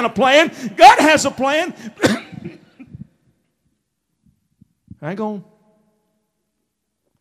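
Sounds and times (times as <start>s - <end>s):
speech: 0.0s - 2.2s, 5.0s - 5.5s
man coughing: 1.8s - 3.2s.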